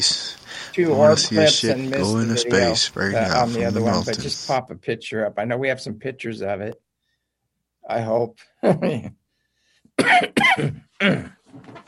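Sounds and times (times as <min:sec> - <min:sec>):
speech: 0:00.8 - 0:06.8, 0:07.9 - 0:09.2, 0:10.0 - 0:11.8
harsh coughs: 0:10.0 - 0:11.4.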